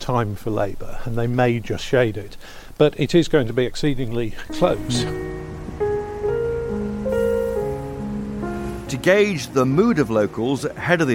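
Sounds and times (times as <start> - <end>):
rain falling on a busy high street: 0.0 - 11.1
speech: 0.1 - 5.4, 8.9 - 11.1
sustained tonal hums shifting in pitch: 4.6 - 8.2.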